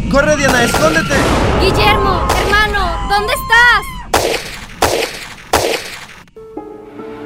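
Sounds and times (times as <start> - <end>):
speech: 0.1 - 4.5
gunfire aimed at people: 0.4 - 2.8, 4.1 - 6.3.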